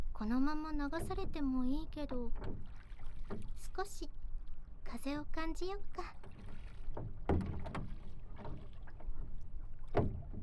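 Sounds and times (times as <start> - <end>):
speech: 0.2 - 4.2, 4.9 - 6.3
oars rowing a boat through water: 2.2 - 4.9, 5.6 - 10.4.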